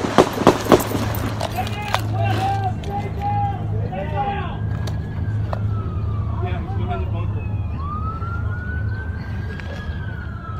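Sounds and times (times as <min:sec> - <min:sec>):
gunshots: 0:00.0 - 0:01.4
emergency sirens wailing: 0:00.0 - 0:10.5
voices: 0:00.0 - 0:10.5.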